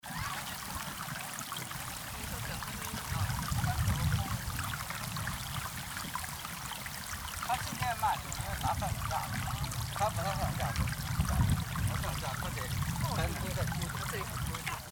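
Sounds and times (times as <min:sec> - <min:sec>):
geyser splashing: 0:00.0 - 0:14.8
voices: 0:02.0 - 0:06.6, 0:07.3 - 0:14.8.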